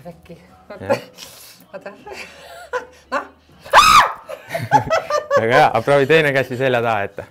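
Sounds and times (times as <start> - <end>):
speech: 0.0 - 3.3, 4.5 - 7.3
person screaming while trying to catch a ball: 3.7 - 4.2
laughter: 4.2 - 6.2.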